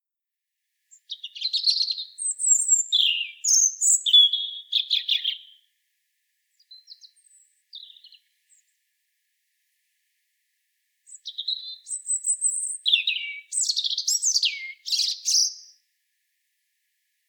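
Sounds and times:
European robin Erithacus rubecula song: 0.9s - 5.7s, 6.6s - 8.7s, 11.1s - 15.8s.

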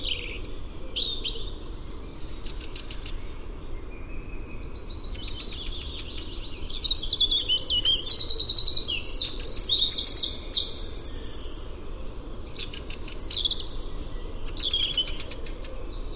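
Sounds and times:
Eurasian wren singing, Troglodytes troglodytes: 0.0s - 16.1s.

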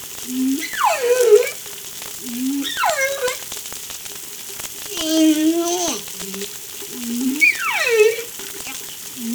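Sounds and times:
whale calls of tonal moans and sweeping whistles: 0.3s - 3.5s, 4.9s - 9.3s.

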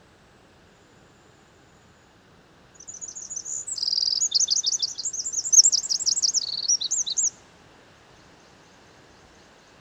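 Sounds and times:
Eurasian wren singing: 2.8s - 7.3s.

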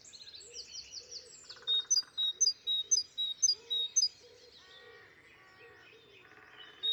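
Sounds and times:
other small birds chattering and twittering: 1.6s - 4.2s
great tit Parus major sharp high metallic calls: 1.7s - 4.1s.

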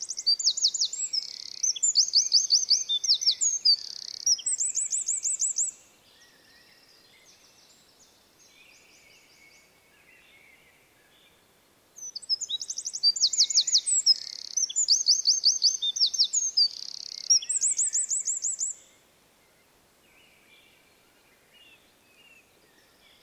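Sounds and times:
Eurasian wren Troglodytes troglodytes song: 0.0s - 11.4s, 12.0s - 23.2s.

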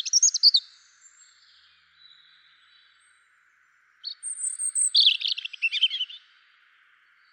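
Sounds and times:
European robin Erithacus rubecula singing twittering phrases: 0.0s - 7.3s.

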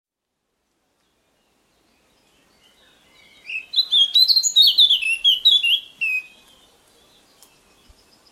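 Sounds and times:
Eurasian blackcap Sylvia atricapilla singing a rich fast warbling phrase: 1.0s - 8.3s.

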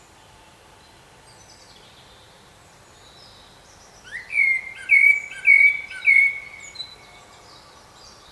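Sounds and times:
Common blackbird singing, Turdus merula: 4.0s - 8.3s.

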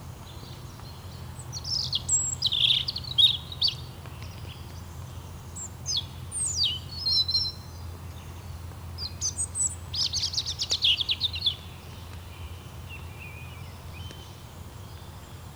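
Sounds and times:
low steady hum: 0.0s - 15.5s
European robin singing warbling phrases, Erithacus rubecula: 0.2s - 15.4s.

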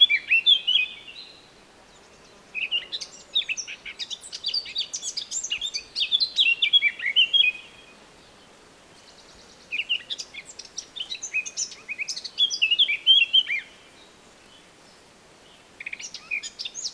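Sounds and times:
Eurasian blackcap Sylvia atricapilla song: 0.0s - 1.4s, 2.2s - 7.9s, 9.0s - 13.8s, 15.5s - 16.9s.

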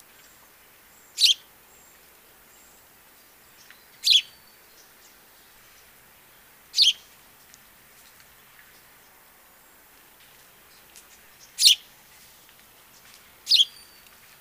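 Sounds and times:
house sparrow chirps, Passer domesticus: 0.2s - 6.0s, 6.7s - 7.2s, 10.7s - 11.9s, 12.9s - 14.3s.

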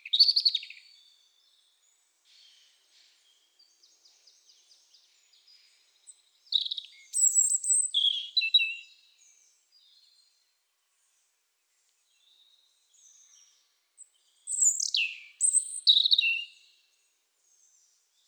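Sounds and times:
European robin Erithacus rubecula singing: 3.6s - 10.0s, 12.2s - 16.6s.

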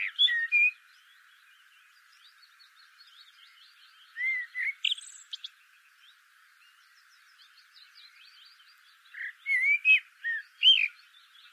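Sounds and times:
Eurasian blackbird Turdus merula fluty whistled phrase: 0.0s - 0.8s, 4.1s - 5.5s, 9.1s - 11.0s.

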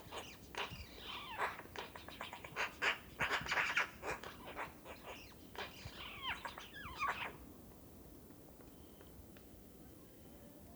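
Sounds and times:
Eurasian magpie Pica pica giving harsh rasping calls: 0.0s - 7.4s.

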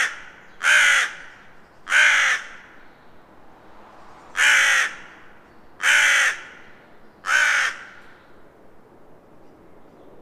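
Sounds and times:
Carrion Crow Corvus corone cawing: 0.0s - 2.8s, 4.4s - 5.2s, 5.8s - 8.1s.

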